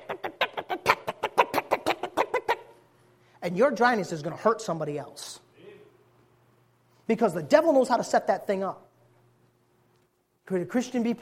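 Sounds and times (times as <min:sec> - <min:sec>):
chickens clucking in a coop: 0:00.0 - 0:02.8
speech: 0:03.4 - 0:05.4, 0:07.1 - 0:08.8, 0:10.5 - 0:11.2.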